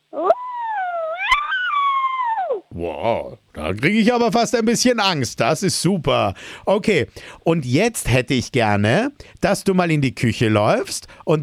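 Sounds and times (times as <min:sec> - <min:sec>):
person imitating an angry wolf howl: 0:00.1 - 0:03.4
speech: 0:03.0 - 0:11.4.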